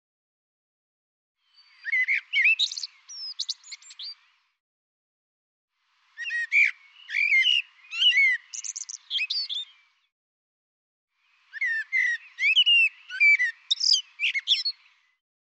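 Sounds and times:
bird song: 1.4s - 4.6s, 5.9s - 10.1s, 11.2s - 15.2s.

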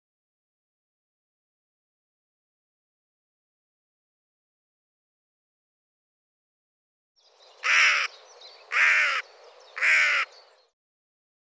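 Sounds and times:
bird giving harsh broad cawing calls: 7.6s - 10.7s.

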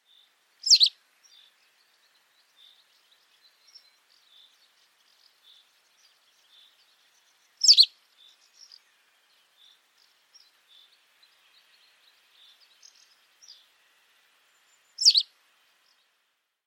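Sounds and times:
faint soft bird chirps: 0.0s - 13.7s, 14.6s - 16.1s
sharp high bird calls: 0.6s - 1.0s, 7.6s - 8.0s, 15.0s - 15.3s.

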